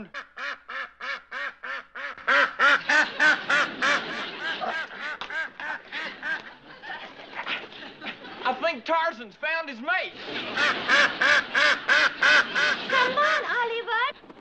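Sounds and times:
duck quacking: 0.0 - 4.0, 10.6 - 12.8
laughter: 2.4 - 8.6, 10.1 - 14.1.

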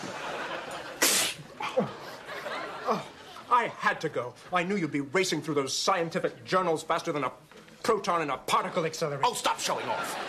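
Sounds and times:
laughter: 0.0 - 5.2, 9.5 - 10.2
person sneezing: 1.0 - 2.0
speech: 2.9 - 10.2.

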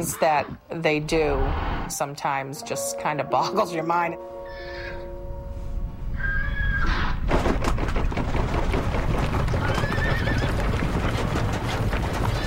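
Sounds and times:
speech: 0.0 - 4.8
horse whinnying: 4.5 - 5.0, 6.2 - 7.2, 9.6 - 10.6
several horses galloping: 7.2 - 12.4.

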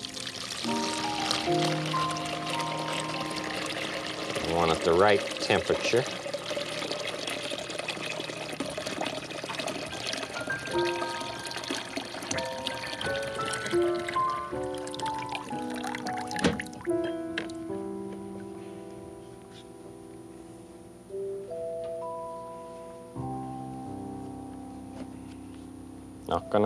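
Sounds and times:
music: 0.0 - 7.6, 9.1 - 26.6
tap water pouring into a bucket: 0.0 - 17.6
speech: 4.5 - 6.2.

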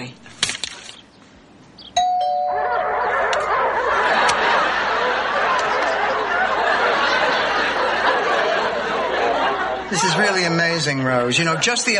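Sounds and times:
bark bell doorbell chime: 2.0 - 2.8
barking-like noise: 2.5 - 7.7
laughter: 2.6 - 11.9
speech: 10.2 - 11.9.

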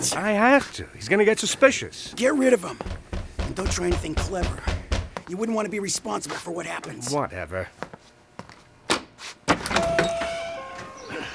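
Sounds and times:
speech: 0.0 - 7.9
lock clicking: 9.6 - 10.9
door swinging open with a faint rising squeak: 9.6 - 11.3.

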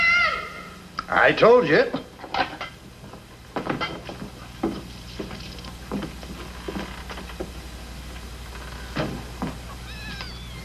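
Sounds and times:
speech: 1.2 - 2.0
wooden knocks and clattering thumps: 3.6 - 7.6
high-pitched kittens mewing inside a barrel: 9.7 - 10.6
mother cat meowing inside a barrel: 9.8 - 10.6.

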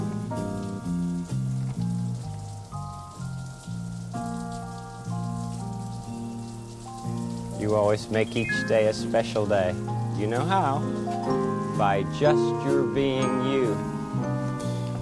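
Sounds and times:
steady rain pattering: 0.0 - 14.9
speech: 7.7 - 13.9
slow melody of sustained musical notes: 8.2 - 9.5.

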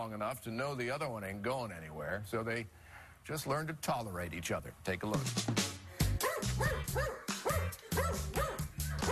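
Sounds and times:
speech: 0.0 - 5.6, 6.6 - 8.5
dog barking with a whiny yelping edge: 6.2 - 9.0.

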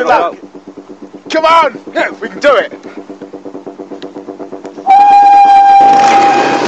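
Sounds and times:
speech: 0.0 - 0.4, 1.3 - 2.9
noisy commotion: 0.0 - 6.6
rhythmic low thumps: 0.0 - 6.6
starting whistle shrill blast: 4.8 - 6.6.

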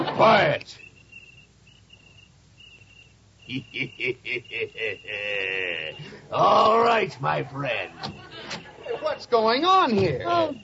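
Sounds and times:
cricket chirping: 0.0 - 10.6
speech: 0.2 - 0.8, 3.5 - 10.6
loud rhythmic chuckling laughter: 3.5 - 6.3, 7.5 - 9.4.

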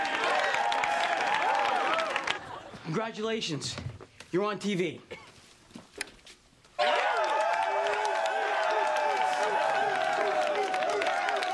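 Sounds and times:
large crowd cheering at a Student Union: 0.0 - 2.8, 6.8 - 11.5
speech: 2.9 - 5.1.

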